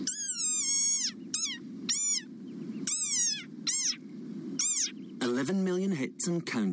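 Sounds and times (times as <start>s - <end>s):
desert rain frog squeaking: 0.0s - 4.0s, 4.6s - 5.1s
steady low rumbling background: 0.0s - 6.7s
speech: 5.4s - 6.7s.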